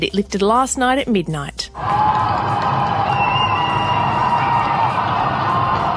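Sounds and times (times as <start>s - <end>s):
speech: 0.0s - 3.0s
large crowd cheering and shouting celebrating end of lockdown: 1.8s - 5.9s
whistles: 2.9s - 5.0s.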